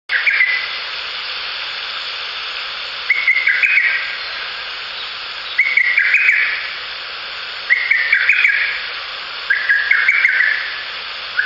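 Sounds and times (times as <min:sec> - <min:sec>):
background hiss: 0:00.1 - 0:11.4
Lesser cuckoo singing loud staccato whistled phrases: 0:03.1 - 0:04.2, 0:05.5 - 0:06.6, 0:07.7 - 0:08.8, 0:09.5 - 0:10.8.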